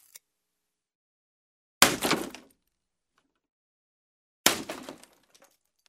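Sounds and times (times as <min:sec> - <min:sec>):
wooden board breaking: 0:01.8 - 0:02.6, 0:04.5 - 0:05.7.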